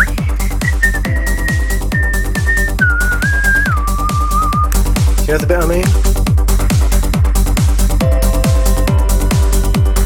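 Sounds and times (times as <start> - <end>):
person whistling a melody from an electronic dance track: 0.0 - 4.8
steady pounding electronic beat: 0.0 - 10.0
speech: 5.3 - 6.1.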